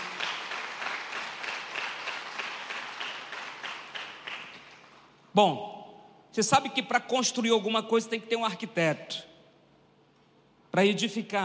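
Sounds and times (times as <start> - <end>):
crowd applauding at a worship service: 0.0 - 5.1
speech: 5.4 - 5.7, 6.4 - 9.3, 10.8 - 11.4.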